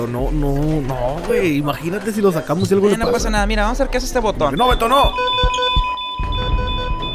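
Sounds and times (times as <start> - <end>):
speech: 0.0 - 5.6
dull low thumps and rumbling: 3.2 - 7.1
hospital alarm with steady piercing electronic tone: 4.4 - 7.1.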